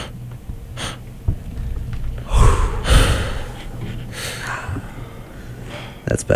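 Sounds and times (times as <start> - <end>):
heavy breathing into a microphone: 2.2 - 6.0.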